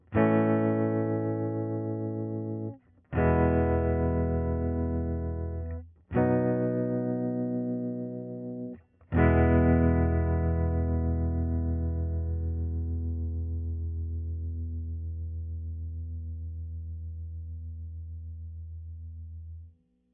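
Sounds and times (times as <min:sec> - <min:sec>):
electric guitar chords through amplifier cone: 0:00.0 - 0:17.1.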